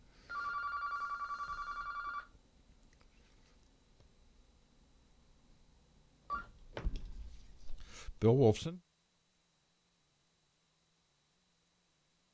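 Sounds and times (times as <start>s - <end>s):
telephone ringing with electronic warbling tone for an incoming call: 0.3s - 2.3s
speech: 8.2s - 8.9s.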